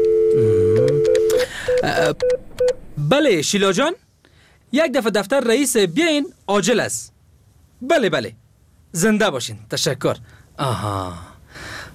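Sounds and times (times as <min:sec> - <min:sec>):
steady telephone tone while dialling a secretary's desk: 0:00.0 - 0:02.7
speech: 0:01.8 - 0:02.4, 0:03.0 - 0:04.0, 0:04.7 - 0:07.1, 0:07.8 - 0:11.8.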